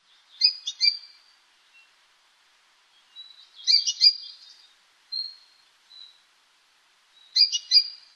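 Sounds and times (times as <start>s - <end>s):
Amakihi chirps: 0.4s - 1.2s, 3.1s - 6.2s, 7.2s - 8.1s.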